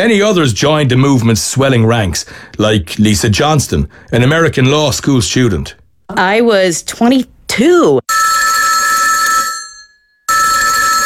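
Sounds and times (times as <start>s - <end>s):
speech: 0.0s - 8.3s
loud telephone bell ringing: 8.1s - 11.0s.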